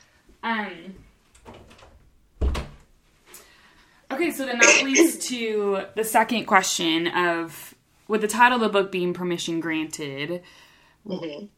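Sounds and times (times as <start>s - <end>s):
speech: 0.4s - 1.6s, 4.2s - 11.5s
door shut quickly with a heavy thud: 1.4s - 2.8s.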